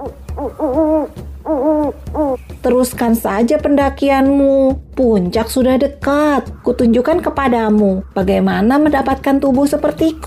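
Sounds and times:
speech: 0:00.0 - 0:01.2, 0:02.7 - 0:10.2
snowy owl hooting: 0:00.0 - 0:02.6.

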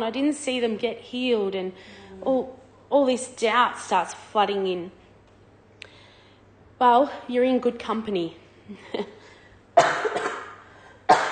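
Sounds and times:
speech: 0:00.0 - 0:05.0, 0:06.8 - 0:09.2
loud harsh cough: 0:09.8 - 0:11.3.

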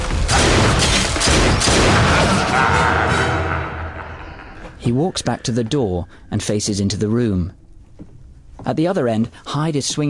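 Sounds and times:
gunshots in a fight with a monster: 0:00.0 - 0:03.2
dense sustained roar of noise: 0:01.7 - 0:04.8
speech: 0:04.8 - 0:10.0.

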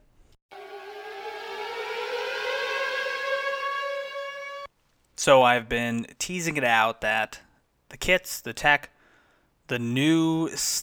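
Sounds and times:
siren: 0:00.5 - 0:04.7
speech: 0:05.2 - 0:08.9, 0:09.7 - 0:10.8.

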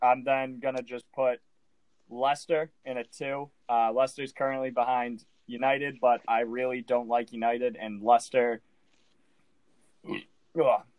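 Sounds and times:
speech: 0:00.0 - 0:01.5, 0:02.1 - 0:08.7, 0:10.0 - 0:10.9
guttural burp: 0:10.0 - 0:10.3.

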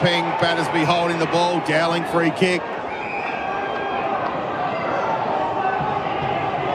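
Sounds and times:
speech: 0:00.0 - 0:02.8
large football crowd yelling and roaring in protest: 0:00.0 - 0:06.7.

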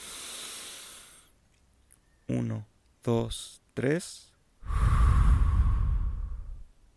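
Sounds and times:
long deep breath during a relaxation breathing exercise: 0:00.0 - 0:01.3, 0:04.6 - 0:06.7
speech: 0:02.4 - 0:04.8.

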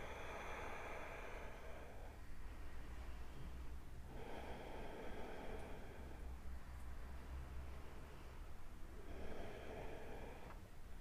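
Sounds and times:
slow deep breaths with airy inhales and exhales: 0:00.0 - 0:10.9.

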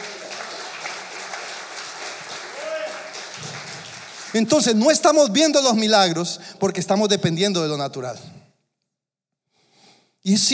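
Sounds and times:
large crowd applauding in a big room: 0:00.0 - 0:05.0
faint voices and cheers: 0:02.5 - 0:03.2
speech: 0:04.3 - 0:08.4, 0:10.3 - 0:10.5.

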